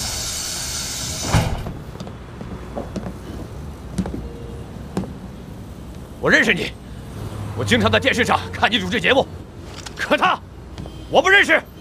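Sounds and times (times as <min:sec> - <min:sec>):
door opening clunk: 0:01.2 - 0:02.0
speech: 0:06.2 - 0:06.8, 0:07.6 - 0:09.4, 0:10.1 - 0:10.5, 0:11.1 - 0:11.7.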